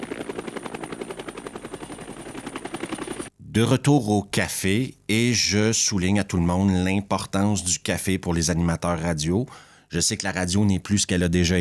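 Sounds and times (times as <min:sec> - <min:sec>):
helicopter flying with rotor blades chopping over engine whine: 0:00.0 - 0:03.3
speech: 0:03.6 - 0:11.5.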